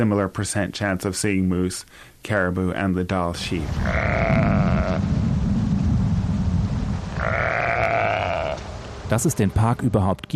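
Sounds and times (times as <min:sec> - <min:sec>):
speech: 0:00.0 - 0:05.2, 0:09.1 - 0:10.3
steady rumbling background: 0:03.2 - 0:09.9
Dall sheep grunting and bleating in a park in Alaska: 0:03.6 - 0:05.1, 0:07.1 - 0:08.6.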